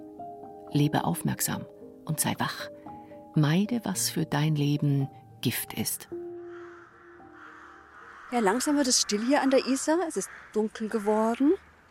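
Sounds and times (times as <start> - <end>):
speech: 0.7 - 2.8, 3.4 - 6.2, 8.3 - 11.7
many crows cawing at evening roost: 6.1 - 11.8.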